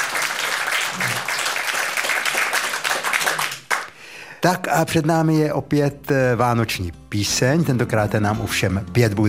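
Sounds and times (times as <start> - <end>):
crowd applauding: 0.0 - 3.9
speech: 4.4 - 9.2.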